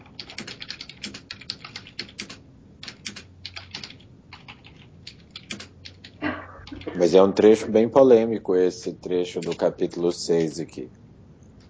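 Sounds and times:
rapid typing on a computer keyboard: 0:00.0 - 0:06.2, 0:09.4 - 0:09.6
speech: 0:06.9 - 0:11.0.

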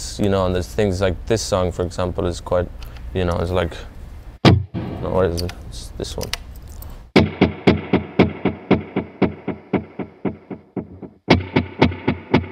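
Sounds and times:
speech: 0:00.2 - 0:03.9, 0:05.1 - 0:06.4
electric guitar through an eighth-note delay effect: 0:07.2 - 0:12.5.

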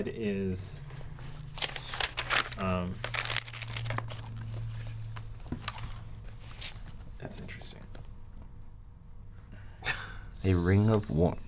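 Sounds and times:
speech: 0:00.0 - 0:00.9, 0:02.6 - 0:03.1, 0:10.4 - 0:11.4
small folded piece of gilded paper crinkling as it is unfolded: 0:01.4 - 0:04.8.

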